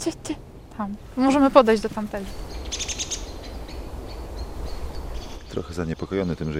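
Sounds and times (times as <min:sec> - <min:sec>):
speech: 0:00.0 - 0:02.9, 0:05.5 - 0:06.5
low rumbling outdoor background: 0:00.0 - 0:06.5
common blackbird agitated sharp alarm calls: 0:01.4 - 0:06.5.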